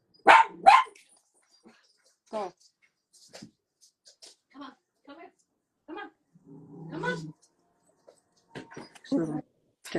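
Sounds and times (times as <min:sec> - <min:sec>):
dog barking: 0:00.2 - 0:01.0
speech: 0:02.3 - 0:03.5.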